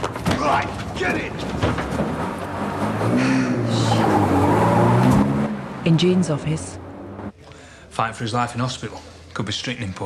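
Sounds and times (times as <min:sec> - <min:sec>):
speech: 0:00.5 - 0:01.6, 0:05.8 - 0:06.8, 0:08.0 - 0:10.0
van engine revving hard and roaring away at speed: 0:02.0 - 0:07.3.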